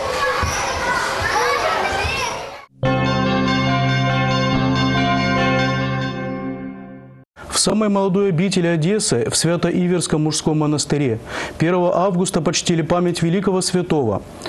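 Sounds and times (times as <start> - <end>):
children chattering and shouting in a busy amusement centre: 0.0 - 2.7
bright electronic jingle with sustained ringing tones: 2.8 - 7.2
speech: 7.6 - 14.4.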